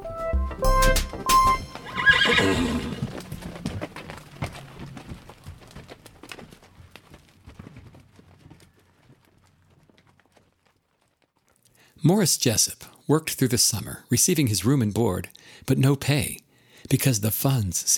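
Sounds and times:
horse hooves clip-clopping: 0.9 - 11.7
horse whinnying: 1.8 - 3.3
speech: 12.0 - 17.9.

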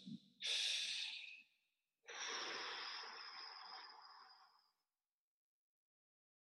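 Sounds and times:
calm relaxed human breathing with long exhales: 0.4 - 1.4, 2.1 - 4.8.

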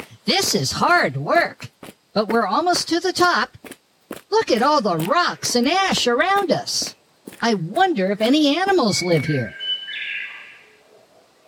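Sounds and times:
speech: 0.3 - 3.6, 4.3 - 9.6
high thin bird call: 8.8 - 10.8.

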